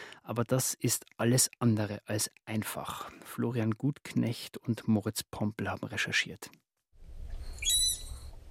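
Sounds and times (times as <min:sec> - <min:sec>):
speech: 0:00.3 - 0:06.6
manatee high-pitched squeaky whistle recorded underwater with a hydrophone: 0:07.4 - 0:08.3.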